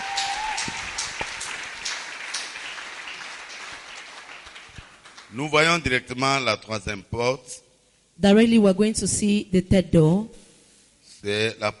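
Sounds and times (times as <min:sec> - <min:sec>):
congregation applauding loudly: 0:00.0 - 0:06.0
speech: 0:05.3 - 0:07.6, 0:08.2 - 0:10.4, 0:11.2 - 0:11.7.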